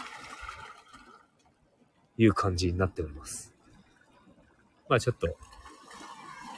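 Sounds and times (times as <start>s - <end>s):
sea waves on a rocky shore: 0.0s - 1.3s, 5.4s - 6.5s
speech: 2.2s - 3.5s, 4.9s - 5.6s.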